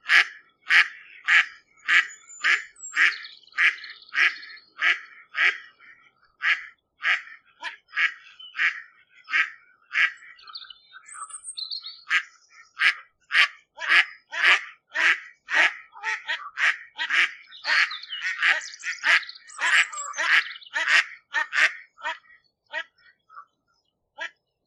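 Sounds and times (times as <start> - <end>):
waterbird giving coarse calls: 0.0 - 23.6.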